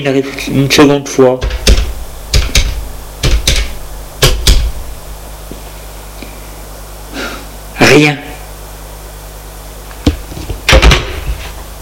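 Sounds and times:
speech: 0.0 - 1.8, 8.0 - 8.2
knocking on a door: 1.4 - 4.8.

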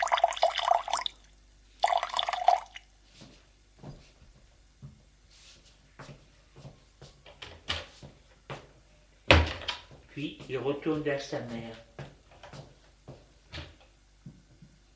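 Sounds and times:
tap water running into a glass: 0.0 - 2.9
speech: 10.2 - 11.9.

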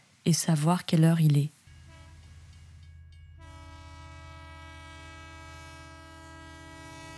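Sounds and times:
speech: 0.2 - 1.6
long sustained train horn blast: 1.8 - 2.3, 3.4 - 7.1.

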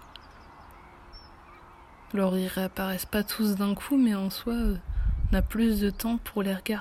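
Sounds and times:
faint scattered bird chirps and honk-like calls: 0.0 - 3.5
steady outdoor noise: 0.0 - 6.7
speech: 2.1 - 6.7.

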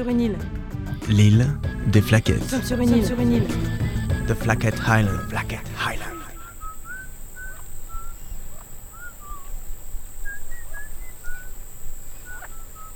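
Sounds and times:
speech: 0.0 - 6.1
steady outdoor hiss: 0.0 - 12.9
elaborate birdlike whistling: 3.6 - 12.9.

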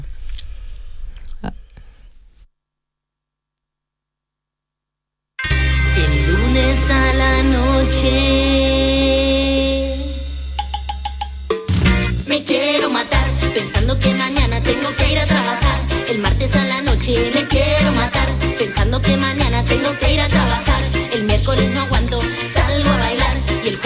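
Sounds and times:
speech: 1.4 - 1.6
song with heavy steady bass and sustained tones played on air: 5.4 - 23.8.

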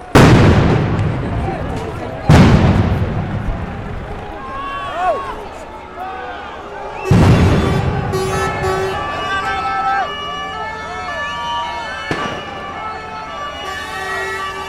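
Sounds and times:
combined tear-gas and stun grenade blasts: 0.0 - 1.5, 2.3 - 3.9, 7.0 - 9.2, 12.1 - 12.8
crowd shouting: 0.0 - 14.6
crowd whistling: 6.8 - 14.6.

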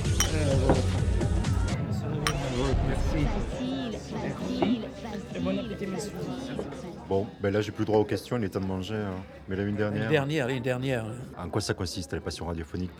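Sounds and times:
glasses clinking in a toast: 0.2 - 0.9
lively murmur of people talking: 0.2 - 12.9
speech: 3.2 - 12.9.

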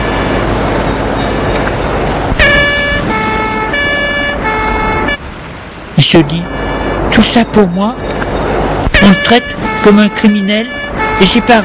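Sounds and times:
police car siren two-tone wail as the car drives off: 0.0 - 1.5, 2.2 - 5.2, 7.5 - 11.6
road traffic rumble: 0.0 - 11.6
speech: 6.0 - 8.1, 9.0 - 11.6.

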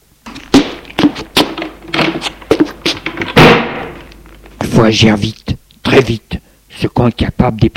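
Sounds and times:
door slamming shut: 0.3 - 4.1
heavy thuds and knocks: 0.3 - 4.7
speech: 4.8 - 5.4, 6.0 - 6.2, 6.8 - 7.7.

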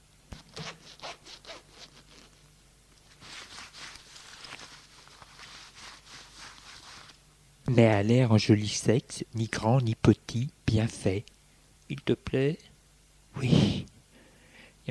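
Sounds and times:
trouser fly zipper being pulled open: 0.4 - 2.4
fabric rustling and rubbing: 3.0 - 7.2
speech: 7.7 - 12.7, 13.4 - 13.9.

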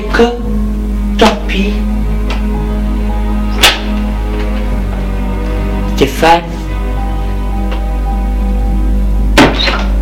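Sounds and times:
steady low hum: 0.0 - 10.0
speech: 0.2 - 0.4
door being shut as someone leaves a room: 9.4 - 10.0.

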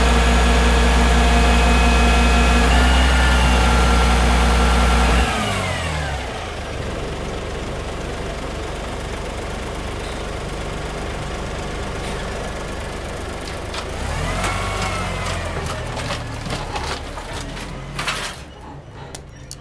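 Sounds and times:
garbage truck engine running and idling: 0.0 - 19.5
scattered clicks and knocks: 14.8 - 19.5.

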